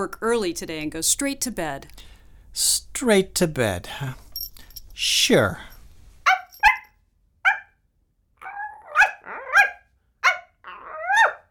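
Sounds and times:
speech: 0:00.0 - 0:04.2, 0:05.0 - 0:05.7
dog barking: 0:07.4 - 0:07.8, 0:08.8 - 0:11.4
dog growling and whining: 0:08.4 - 0:09.8, 0:10.6 - 0:11.4.

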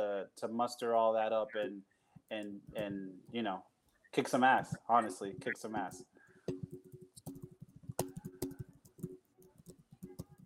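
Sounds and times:
speech: 0:00.3 - 0:06.2
rapid forceful typing on a computer keyboard: 0:05.6 - 0:10.4.

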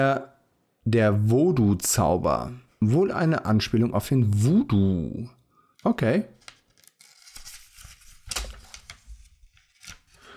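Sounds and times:
speech: 0:00.0 - 0:06.4
magazine page tearing loose from glued binding: 0:06.4 - 0:10.3.

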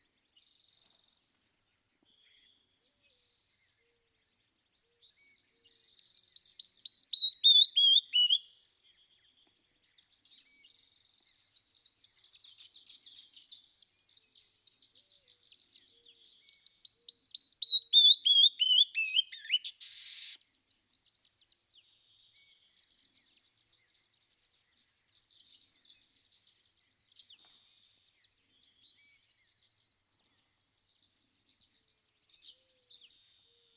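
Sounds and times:
canyon wren singing: 0:00.0 - 0:33.7
canyon wren ticking and chattering calls: 0:16.5 - 0:20.4.

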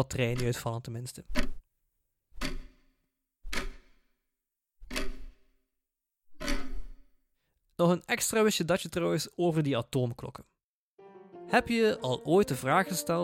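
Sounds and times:
speech: 0:00.0 - 0:01.6, 0:07.8 - 0:10.5, 0:11.5 - 0:13.2
clock ticking: 0:00.1 - 0:00.7.

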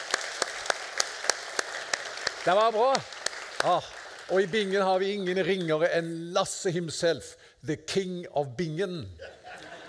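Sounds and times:
applause for introduced guests: 0:00.0 - 0:05.9
hiss: 0:00.0 - 0:09.8
speech: 0:02.4 - 0:09.4
laughter: 0:09.2 - 0:09.8.

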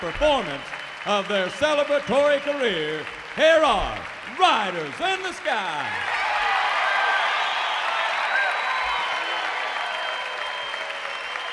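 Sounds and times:
speech: 0:00.0 - 0:06.1
large excited theater crowd applauding: 0:00.0 - 0:11.5
crowd whistles and cheers: 0:00.4 - 0:02.8, 0:05.9 - 0:11.5.

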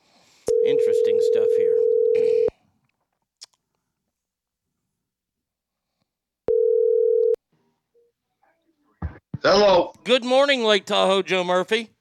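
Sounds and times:
mid-pitched telephone dial tone while placing a call: 0:00.5 - 0:02.5, 0:06.5 - 0:07.4
speech: 0:00.7 - 0:02.3, 0:09.4 - 0:11.9.

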